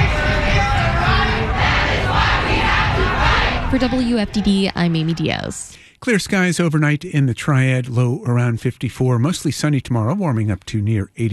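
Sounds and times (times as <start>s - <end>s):
huge crowd marching and chanting outdoors downtown: 0.0s - 5.6s
speech: 3.7s - 11.3s.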